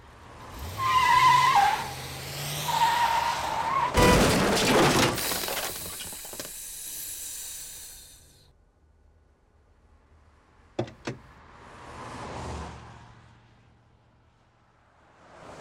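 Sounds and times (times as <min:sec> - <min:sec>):
car tires squealing in a drawn-out skid: 0:00.4 - 0:06.6
car crashing into a pillar: 0:00.8 - 0:06.9
crunching shattering debris rattling: 0:03.9 - 0:06.9.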